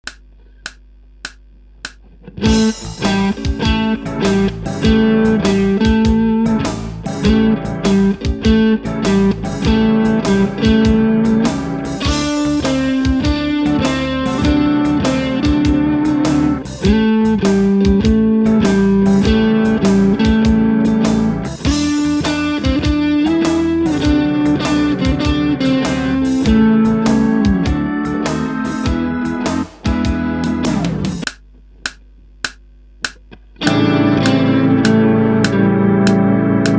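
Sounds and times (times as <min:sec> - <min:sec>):
blues piece: 0:00.0 - 0:36.7.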